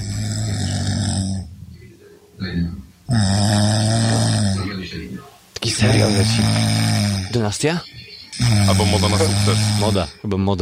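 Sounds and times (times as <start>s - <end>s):
woman snoring loudly: 0.0s - 1.5s, 3.1s - 4.7s, 5.8s - 7.4s, 8.4s - 10.1s
speech: 6.1s - 10.6s.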